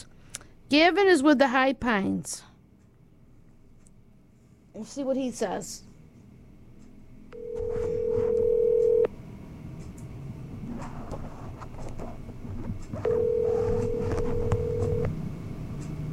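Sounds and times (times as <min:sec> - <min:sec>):
speech: 0:00.7 - 0:02.5, 0:04.8 - 0:05.9
phone line ringback tones on a call: 0:07.4 - 0:09.1, 0:13.1 - 0:15.1.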